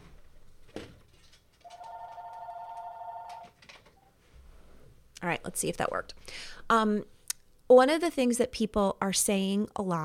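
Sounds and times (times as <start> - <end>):
telephone ringing with a steady electronic tone: 1.6 - 3.6
speech: 5.2 - 10.0.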